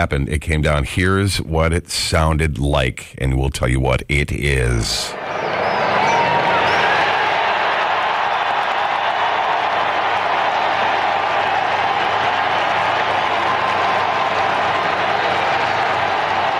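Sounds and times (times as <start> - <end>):
speech: 0.0 - 5.4
whistles: 5.1 - 9.0
huge outdoor crowd cheering as new pope appears: 5.1 - 16.5
crowd applause: 6.1 - 16.5.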